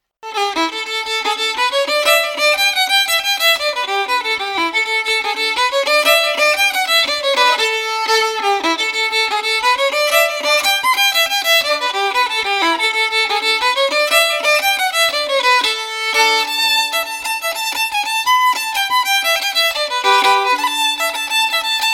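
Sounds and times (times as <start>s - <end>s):
fiddle tune: 0.2s - 21.9s.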